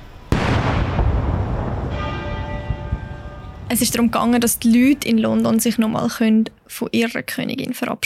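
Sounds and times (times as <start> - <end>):
cannon salute shot during a funeral procession in London: 0.3 - 5.6
Big Ben bell ringing: 1.9 - 5.1
speech: 3.7 - 8.0.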